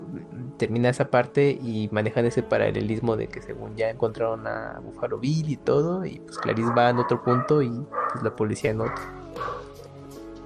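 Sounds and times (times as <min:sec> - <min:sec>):
speech: 0:00.2 - 0:09.6
dog barking: 0:06.4 - 0:09.8.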